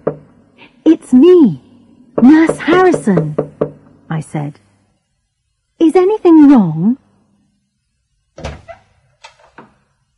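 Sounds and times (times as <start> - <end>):
firm knocking on a wooden door: 0.0 - 0.4, 2.2 - 3.9
speech: 0.9 - 1.6, 2.2 - 3.4, 4.2 - 4.7, 5.8 - 7.0.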